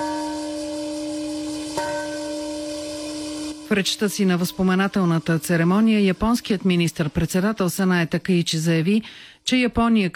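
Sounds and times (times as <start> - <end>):
peace bell ringing in a memorial park in Hiroshima: 0.0 - 7.1
speech: 3.7 - 10.1.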